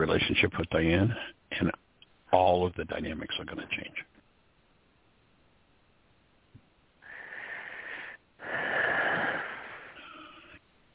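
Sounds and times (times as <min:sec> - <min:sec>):
speech: 0:00.1 - 0:04.1
slow deep human breath during a guided breathing exercise: 0:07.0 - 0:10.6.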